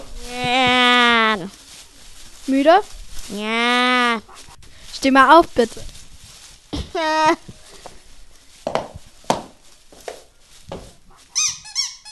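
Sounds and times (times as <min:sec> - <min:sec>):
soft rustling: 0:00.0 - 0:12.1
speech: 0:02.5 - 0:04.4, 0:05.0 - 0:05.9
glowing red squeaky toy nose squeaking: 0:11.3 - 0:12.1.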